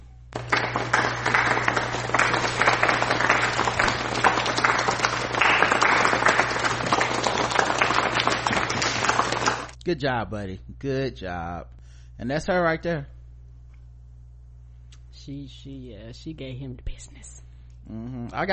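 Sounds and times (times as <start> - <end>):
faint low hum: 0.0 - 18.5
golf clap, polite soft clapping: 0.4 - 9.8
speech: 9.9 - 13.1, 15.2 - 18.5.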